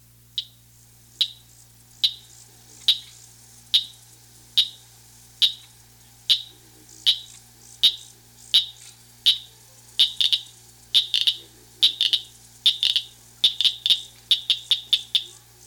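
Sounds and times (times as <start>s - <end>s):
southern cricket frog calling: 0.4s - 15.6s.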